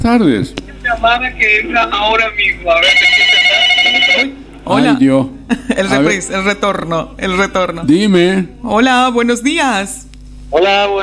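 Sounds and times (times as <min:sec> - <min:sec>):
speech: 0:00.0 - 0:03.2, 0:04.2 - 0:11.0
telephone ringing with an incoming call, buzzing electronic ring: 0:01.2 - 0:04.9.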